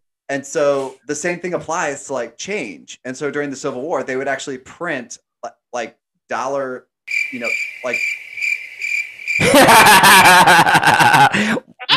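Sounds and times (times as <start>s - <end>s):
speech: 0.3s - 8.3s, 9.4s - 11.7s
crickets chirping: 7.1s - 9.6s
laughter: 9.4s - 11.9s.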